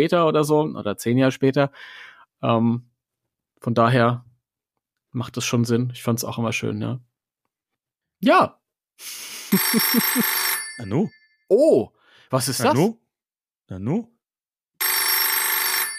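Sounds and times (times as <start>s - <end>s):
speech: 0.0s - 2.9s, 3.6s - 4.3s, 5.1s - 7.1s, 8.2s - 13.0s, 13.7s - 14.1s
old-style telephone bell ringing: 9.5s - 11.5s, 14.8s - 15.9s.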